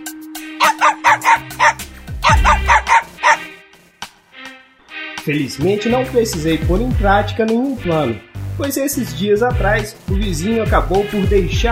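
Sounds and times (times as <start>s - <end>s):
dog barking: 0.6s - 3.5s
speech: 5.3s - 11.7s.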